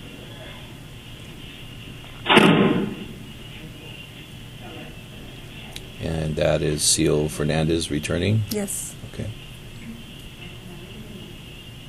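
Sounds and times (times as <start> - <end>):
steady hiss: 0.0 - 11.8
heavy metallic jail module door slamming shut: 2.3 - 3.2
speech: 6.0 - 9.4.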